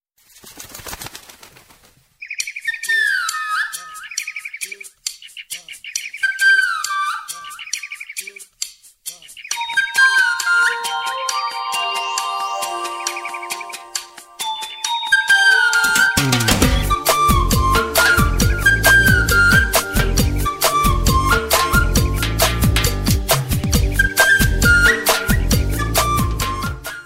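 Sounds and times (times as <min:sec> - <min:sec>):
Telugu love birds background music tone: 0:05.9 - 0:27.0.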